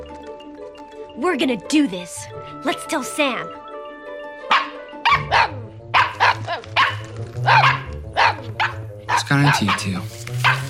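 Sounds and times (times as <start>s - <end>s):
speech: 1.2s - 3.6s, 9.3s - 10.6s
small dog yapping with high-pitched barks: 4.5s - 10.6s.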